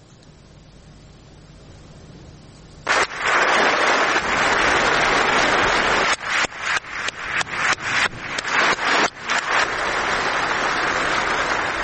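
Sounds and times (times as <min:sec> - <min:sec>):
large crowd applause in a parliament hall: 0:03.3 - 0:11.8.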